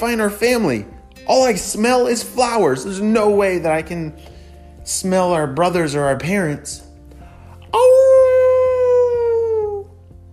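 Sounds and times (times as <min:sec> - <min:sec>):
speech: 0:00.0 - 0:06.8, 0:07.7 - 0:08.0
voice imitating wolf howl: 0:07.7 - 0:10.0.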